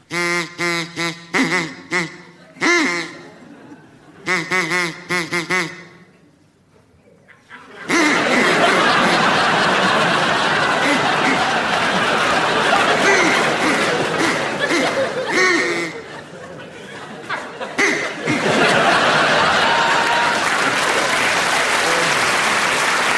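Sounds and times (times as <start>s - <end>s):
duck quacking: 0.1s - 3.4s, 4.2s - 6.1s, 7.9s - 9.3s, 10.6s - 11.8s, 12.7s - 16.2s, 17.8s - 18.7s
audience laughing: 1.6s - 4.5s, 7.3s - 23.1s
audience applause: 8.5s - 14.7s, 18.5s - 23.1s.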